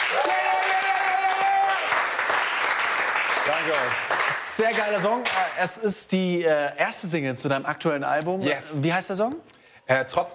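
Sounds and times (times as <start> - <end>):
cheers and whoops: 0.0 - 2.1
small group clapping: 0.0 - 5.6
speech: 3.6 - 10.3.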